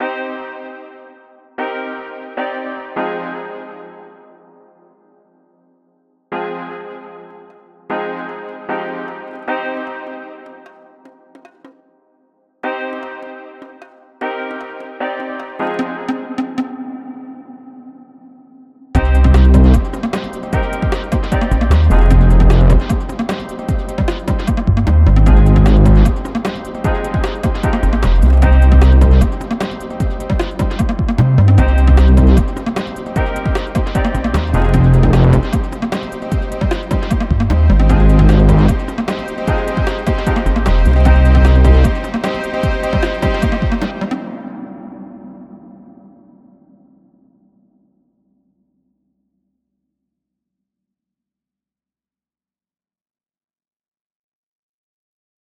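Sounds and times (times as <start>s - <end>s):
infinite guitar texture through three fuzz machines, flipped and merged: 19.0s - 23.4s, 24.0s - 29.6s, 30.2s - 44.0s.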